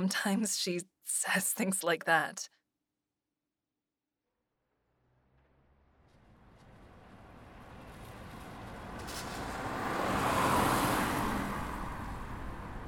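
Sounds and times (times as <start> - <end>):
speech: 0.0 - 2.6
vehicle engine and tire rumble approaching: 4.5 - 12.8.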